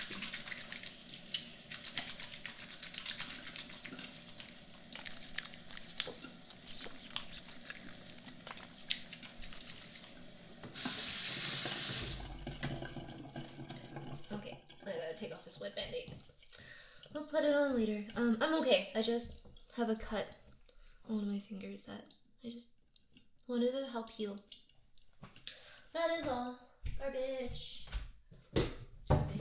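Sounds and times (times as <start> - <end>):
running tap water at a sink as hands are washed: 0.0 - 16.6
quiet household noise: 0.0 - 29.3
speech: 15.6 - 16.3, 17.2 - 20.4, 21.1 - 22.8, 23.5 - 24.6, 26.0 - 27.8.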